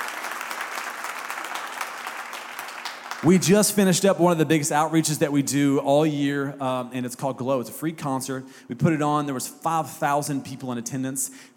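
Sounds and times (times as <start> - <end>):
audience applause: 0.0 - 3.4
speech: 3.2 - 11.5.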